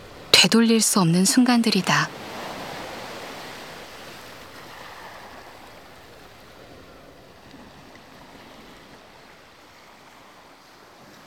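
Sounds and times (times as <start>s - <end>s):
ocean surf roaring: 0.0s - 8.9s
speech: 0.4s - 2.2s.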